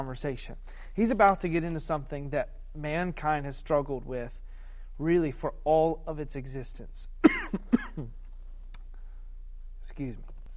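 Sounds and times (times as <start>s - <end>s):
speech: 0.0s - 4.4s, 5.0s - 8.2s, 9.9s - 10.3s
throat-clearing coughs from a person with a pollen-filled throat: 7.2s - 8.2s.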